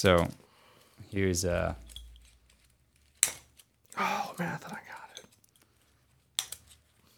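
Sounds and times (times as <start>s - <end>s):
speech: 0.0s - 0.4s, 1.1s - 1.8s, 4.0s - 4.9s
metal watch buckle scraping as it slips off a bottle cap: 1.6s - 3.5s.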